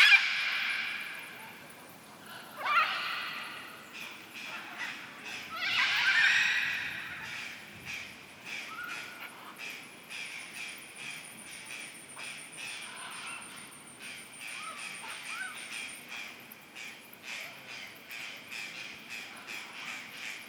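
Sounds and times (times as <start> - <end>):
macaws giving loud raspy calls at Buraco das Araras near Bonito, Brazil: 0.0 - 1.6, 2.3 - 10.2, 11.0 - 20.4
steady outdoor hiss: 0.0 - 20.4.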